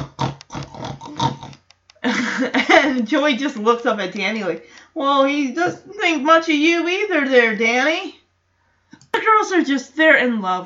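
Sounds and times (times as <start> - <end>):
pet pig grunting in a house: 0.0 - 1.7
speech: 2.1 - 8.2, 9.4 - 10.6.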